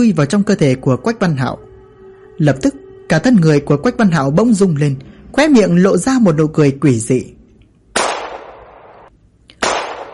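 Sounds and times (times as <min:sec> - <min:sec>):
speech: 0:00.0 - 0:01.7, 0:02.4 - 0:07.4
gunshots: 0:08.0 - 0:10.1.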